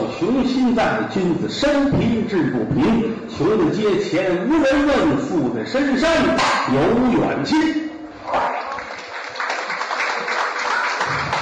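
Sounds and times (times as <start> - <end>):
speech: 0.3 - 8.4
audience giving sparse applause: 8.4 - 11.4.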